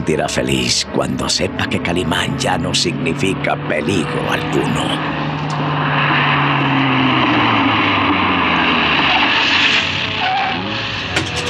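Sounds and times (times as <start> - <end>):
car engine rumbling as the car approaches and stops: 0.0 - 11.4
speech: 0.1 - 5.7.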